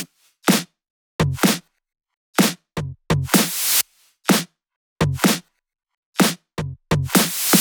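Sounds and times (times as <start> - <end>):
drum kit beat: 0.0 - 1.6, 2.4 - 5.4, 6.2 - 7.6.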